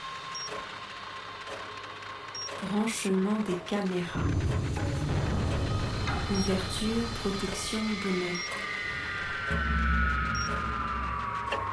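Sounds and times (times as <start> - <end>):
small Peltier cooler fan whirring at an observatory telescope: 0.0 - 11.7
speech: 1.5 - 1.8, 2.5 - 5.3, 6.3 - 8.7, 9.5 - 10.8.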